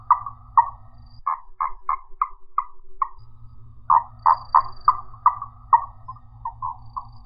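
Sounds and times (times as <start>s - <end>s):
low hum: 0.0s - 1.3s, 3.1s - 7.2s
marsupial frog calling, Gastrotheca ovifera: 0.0s - 7.2s.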